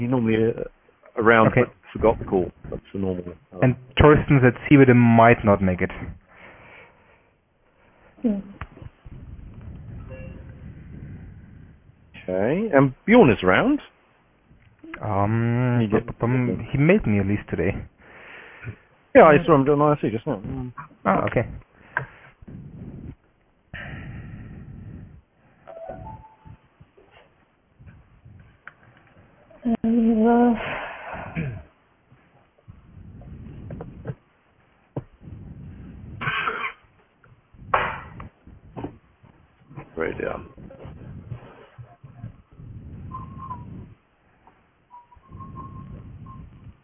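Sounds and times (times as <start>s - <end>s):
speech: 0.0s - 6.2s, 8.2s - 8.6s, 12.3s - 13.9s, 15.0s - 17.9s, 18.6s - 22.7s, 29.6s - 30.8s, 40.0s - 40.5s
loud breathing into a microphone: 6.0s - 8.2s, 9.0s - 12.1s, 17.8s - 18.9s, 21.5s - 25.7s, 30.6s - 34.2s, 35.0s - 36.3s, 37.5s - 44.5s, 45.2s - 46.8s.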